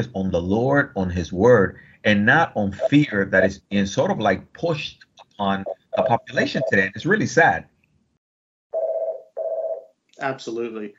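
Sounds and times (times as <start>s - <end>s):
speech: 0.0s - 7.7s, 10.2s - 10.9s
electronic telephone ringing: 5.6s - 6.8s, 8.8s - 9.9s.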